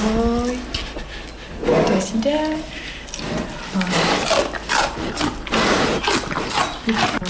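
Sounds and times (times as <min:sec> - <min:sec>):
two bears crunching celery stalks in their enclosure: 0:01.8 - 0:07.2
speech: 0:02.1 - 0:02.8.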